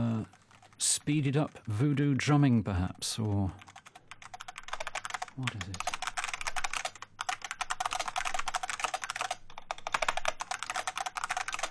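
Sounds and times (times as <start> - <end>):
typing on customised mechanical keyboards: 0.0 - 11.6
speech: 0.8 - 3.7, 5.4 - 5.9.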